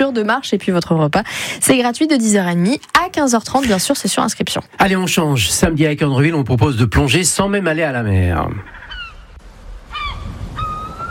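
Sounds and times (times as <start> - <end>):
speech: 0.0 - 8.8
gulls calling with harsh nasal cries: 7.0 - 11.0.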